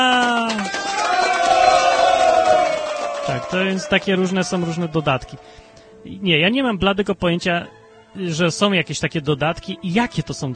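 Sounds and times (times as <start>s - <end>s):
crowd cheering and shouting: 0.0s - 5.6s
speech: 3.5s - 10.5s.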